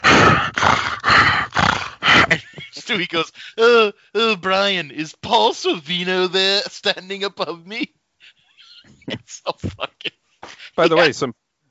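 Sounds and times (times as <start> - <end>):
person imitating a horse breathing heavily: 0.0 - 4.1, 10.4 - 11.1
laughter: 2.1 - 4.7, 5.6 - 11.3
speech: 3.0 - 8.0, 8.8 - 11.4.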